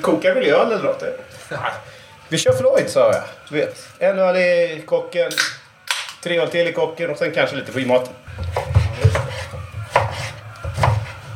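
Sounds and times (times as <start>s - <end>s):
speech: 0.0s - 5.6s, 6.2s - 8.7s
knife chopping food on a cutting board: 8.3s - 11.3s.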